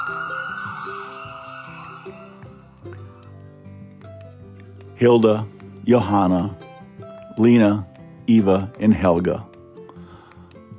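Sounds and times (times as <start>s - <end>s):
ambulance siren wailing: 0.0s - 2.6s
speech: 5.0s - 6.6s, 7.4s - 9.5s.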